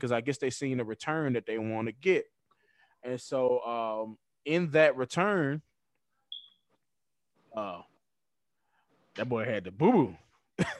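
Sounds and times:
speech: 0.0s - 2.4s, 3.0s - 5.7s, 7.6s - 7.9s, 9.2s - 10.7s
phone high-pitched electronic beep: 6.3s - 6.6s.

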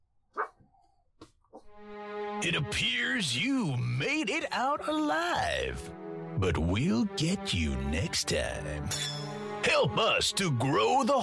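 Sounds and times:
small dog barking: 0.4s - 0.6s
speech: 2.4s - 11.2s.

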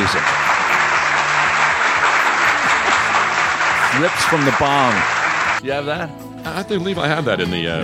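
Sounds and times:
crowd applause: 0.0s - 5.6s
speech: 4.0s - 7.8s.

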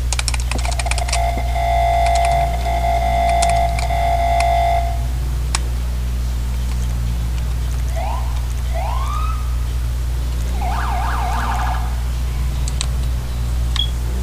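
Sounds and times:
steady low hum: 0.0s - 14.2s
newly replaced siren being tested: 0.5s - 5.3s, 7.8s - 12.6s.

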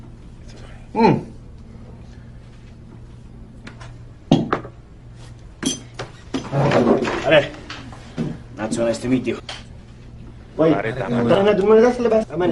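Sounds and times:
steady low hum in the room: 0.0s - 12.5s
speech: 0.9s - 1.3s, 7.3s - 7.6s, 8.9s - 9.6s, 10.6s - 12.5s
glasses clinking in a toast: 5.6s - 6.0s.

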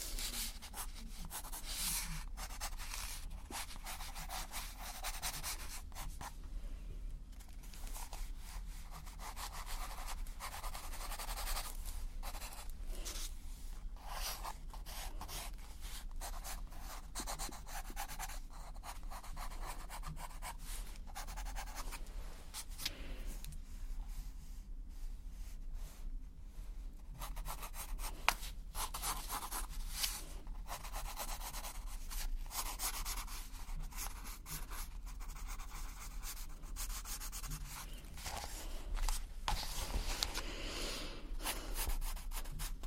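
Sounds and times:
pencil scratching and rubbing across paper: 0.0s - 6.3s, 7.9s - 13.2s, 14.0s - 21.9s, 27.2s - 40.3s, 41.4s - 42.8s
low steady hum: 0.0s - 42.8s.

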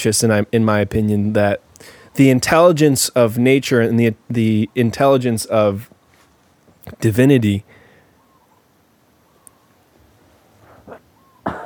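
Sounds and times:
speech: 0.0s - 6.0s, 6.9s - 7.8s
person sneezing close to the microphone: 10.8s - 11.6s.

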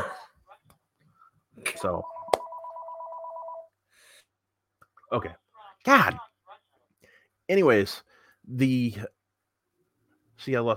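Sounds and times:
speech: 1.8s - 2.1s, 5.1s - 6.3s, 7.5s - 9.2s, 10.4s - 10.7s
telephone ringing with a warbling two-tone burst: 1.8s - 3.8s.

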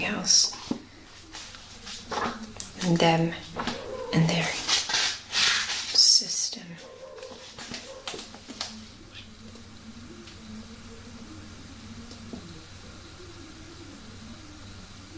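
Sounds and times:
speech: 0.0s - 0.5s, 2.8s - 3.5s
steady hiss of noise: 0.0s - 15.1s
dogs barking: 3.5s - 4.6s, 6.8s - 8.5s.

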